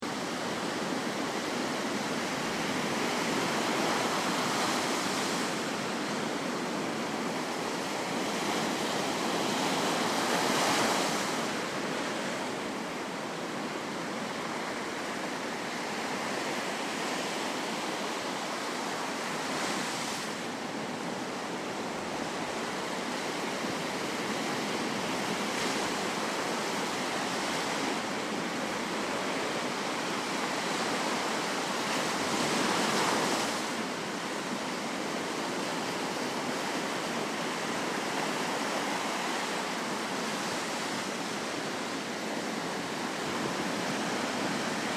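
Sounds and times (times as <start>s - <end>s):
stormy sea with surging billows at Ocean Beach: 0.0s - 44.9s.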